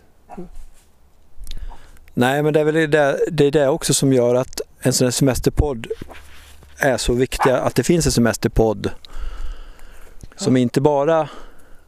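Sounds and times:
speech: 0.4 - 0.7, 2.2 - 9.4, 10.4 - 11.5
dog whimpering out in nature: 7.4 - 7.7.

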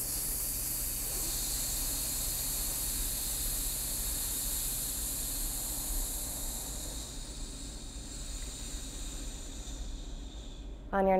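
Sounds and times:
long steady hissing exhale: 0.0 - 10.9
constant low hum: 0.0 - 11.1.

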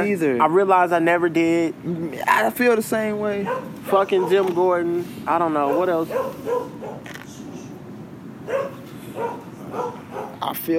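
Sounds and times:
speech: 0.0 - 7.2, 9.2 - 10.7
dog barking: 3.4 - 4.6, 5.6 - 7.1, 8.5 - 10.4.

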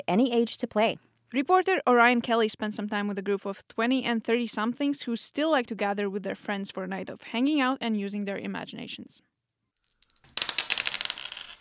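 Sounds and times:
speech: 0.1 - 9.3
dice clattering across a table in an old Victorian house: 9.8 - 11.5.

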